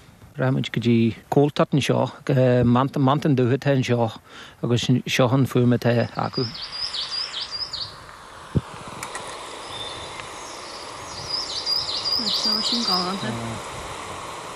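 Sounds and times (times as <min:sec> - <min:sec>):
speech: 0:00.4 - 0:07.1
other bird chirps: 0:05.9 - 0:08.0, 0:09.6 - 0:13.6
great spotted woodpecker calls outdoors: 0:06.0 - 0:08.2, 0:09.5 - 0:13.6.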